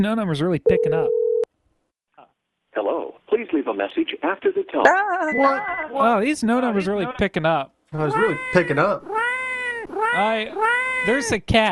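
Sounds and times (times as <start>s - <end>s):
speech: 0.0s - 1.2s, 2.8s - 9.2s, 10.1s - 11.7s
cat meowing: 8.0s - 11.3s.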